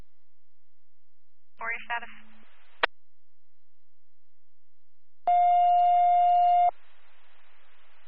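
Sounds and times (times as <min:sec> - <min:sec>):
faint radio static: 0:01.6 - 0:02.9, 0:06.7 - 0:08.0
speech: 0:01.9 - 0:02.4
EMS dispatch alert tone over a radio: 0:05.3 - 0:06.7.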